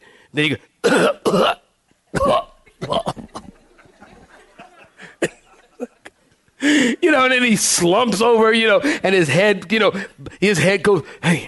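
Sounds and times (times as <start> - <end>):
speech: 0.3 - 2.4, 7.2 - 11.4
man imitating the rattling death cough of a dying man: 0.8 - 3.6
laughter: 3.2 - 6.2.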